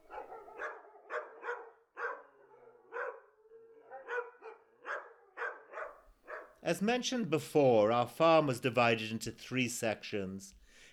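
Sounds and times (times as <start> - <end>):
pack of dogs barking excitedly: 0.0 - 6.6
speech: 6.6 - 10.6.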